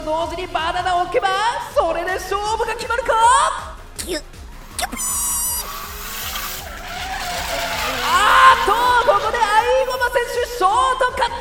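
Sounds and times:
speech: 0.1s - 4.4s, 8.7s - 11.3s
racing video game tires skidding: 4.3s - 11.3s
racing video game engine drone: 4.6s - 10.4s.

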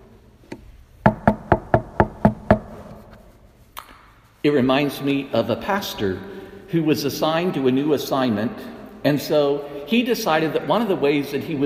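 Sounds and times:
firm knocks on a door: 1.0s - 2.8s
speech: 4.4s - 11.6s.

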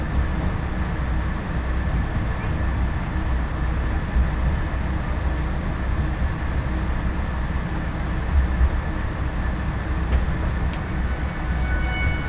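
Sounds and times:
diesel train rolling with deep engine drone: 0.0s - 12.2s
faint high squeals from diesel train: 11.0s - 12.2s.

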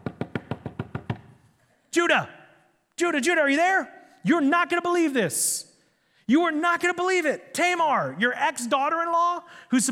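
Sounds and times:
sharp knocking on a door: 0.0s - 1.3s
speech: 2.0s - 2.4s, 3.0s - 5.7s, 6.3s - 9.8s.

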